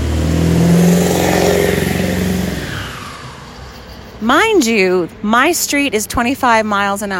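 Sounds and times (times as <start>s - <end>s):
loud truck engine roaring past outside: 0.0s - 5.2s
speech: 4.3s - 7.1s.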